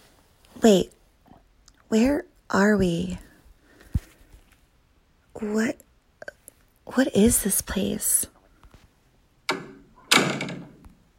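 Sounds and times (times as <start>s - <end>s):
speech: 0.6s - 1.0s, 1.9s - 3.3s, 5.4s - 5.8s, 6.9s - 8.3s
heavy door thudding shut: 9.5s - 10.8s.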